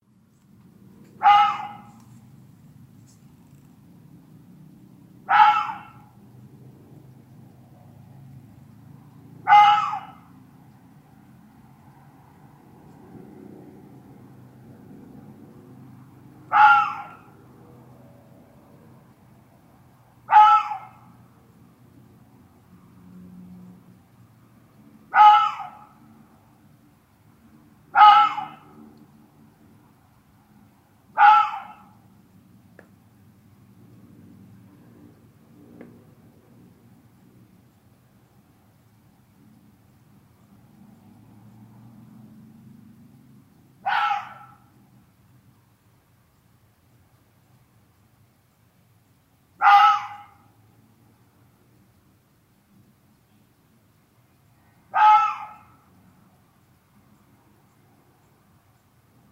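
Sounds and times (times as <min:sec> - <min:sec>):
fox barking: 0:01.1 - 0:02.1, 0:05.2 - 0:06.2, 0:09.4 - 0:10.4, 0:16.4 - 0:17.4, 0:20.2 - 0:21.2, 0:25.1 - 0:26.0, 0:27.9 - 0:28.8, 0:31.1 - 0:32.0, 0:43.8 - 0:44.7, 0:49.6 - 0:50.5, 0:54.9 - 0:55.9.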